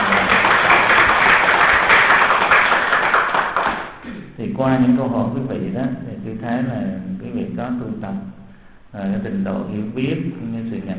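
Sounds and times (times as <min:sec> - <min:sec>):
crowd applauding: 0:00.0 - 0:04.0
speech: 0:04.6 - 0:10.9.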